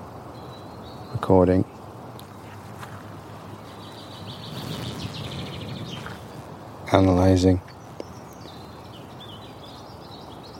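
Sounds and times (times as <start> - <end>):
small songbird chirping, likely a chaffinch: 0.3 - 10.5
speech: 1.2 - 1.8, 7.0 - 7.7
steady low outdoor rumble: 2.0 - 9.1.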